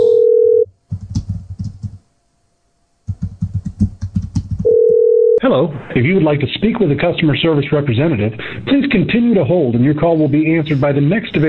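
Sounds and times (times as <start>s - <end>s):
telephone dial tone: 0.0s - 0.7s, 4.6s - 5.4s
rapid clicking and tapping: 0.9s - 2.0s, 3.0s - 4.9s
speech: 5.5s - 11.4s.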